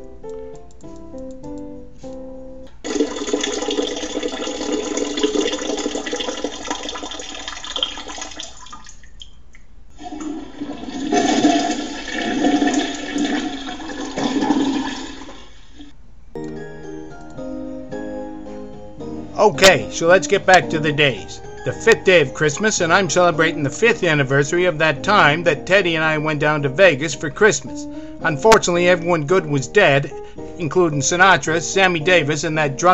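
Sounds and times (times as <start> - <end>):
toilet flush with rushing, gurgling water: 2.8 - 9.2, 10.0 - 15.9
speech: 19.4 - 32.9.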